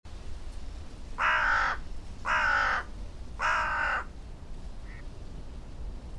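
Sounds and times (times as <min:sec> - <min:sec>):
Corvus corone calling: 0:01.2 - 0:04.1, 0:04.8 - 0:05.1.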